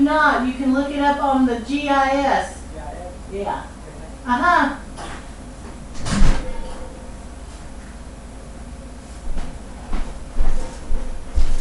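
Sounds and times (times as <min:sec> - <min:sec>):
low steady hum: 0:00.0 - 0:11.5
speech: 0:00.1 - 0:02.6, 0:03.3 - 0:04.8
house door opening and closing: 0:05.9 - 0:06.9.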